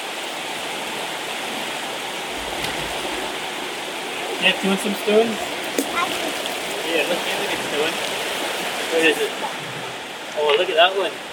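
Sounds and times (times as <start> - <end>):
forest stream flowing over rocks: 0.0 - 11.3
splash: 1.6 - 10.7
low rumble: 2.3 - 4.4
speech: 4.4 - 5.5, 6.1 - 8.2, 8.9 - 9.6, 10.4 - 11.2.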